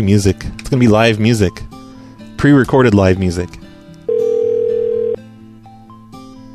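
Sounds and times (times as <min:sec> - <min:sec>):
speech: 0:00.0 - 0:01.8, 0:02.4 - 0:03.6
ringback tone on a phone line to a number not in service: 0:04.1 - 0:05.2.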